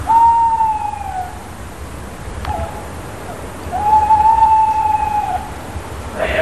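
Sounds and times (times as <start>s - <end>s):
bird singing long pure whistled notes: 0.0s - 1.5s, 2.4s - 2.9s, 3.7s - 5.6s
faint hiss: 0.0s - 6.4s.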